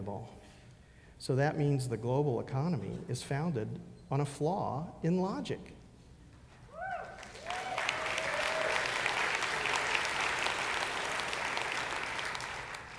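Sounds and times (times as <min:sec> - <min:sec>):
speech: 0:00.0 - 0:00.5, 0:01.2 - 0:05.8
large audience clapping: 0:07.0 - 0:12.9.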